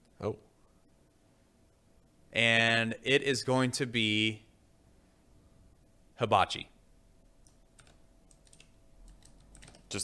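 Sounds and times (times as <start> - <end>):
speech: 0.2 - 0.5, 2.4 - 4.4, 6.2 - 6.7
rapid typing on a computer keyboard: 7.4 - 10.0.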